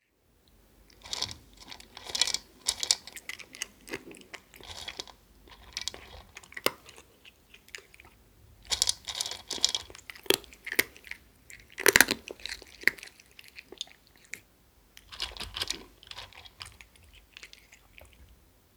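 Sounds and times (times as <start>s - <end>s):
cat eating dry food: 0.5s - 18.4s.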